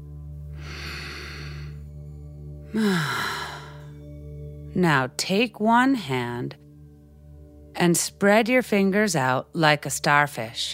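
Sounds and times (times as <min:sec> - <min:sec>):
slow deep breath during a children's bedtime meditation: 0:00.5 - 0:01.9, 0:02.7 - 0:04.0
speech: 0:02.7 - 0:03.3, 0:04.8 - 0:06.6, 0:07.8 - 0:10.7.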